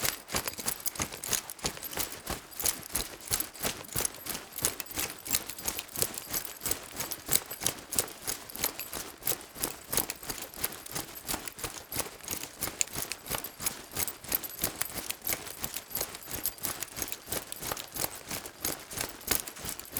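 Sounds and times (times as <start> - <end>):
leather backpack jostling while jogging: 0.0 - 19.9.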